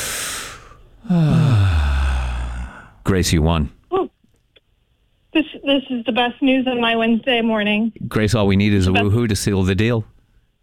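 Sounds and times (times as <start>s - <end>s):
three people exhaling with a low voiced exhale: 0.0s - 3.0s
three people inhaling deeply together: 0.0s - 3.0s
speech: 1.0s - 1.4s, 3.1s - 3.8s, 5.7s - 10.2s.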